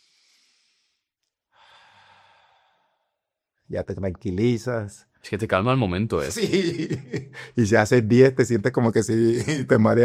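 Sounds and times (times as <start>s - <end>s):
long slow deep calming breath in and exhale: 0.0s - 3.3s
speech: 3.7s - 10.0s
laughter: 6.2s - 7.6s, 9.1s - 10.0s.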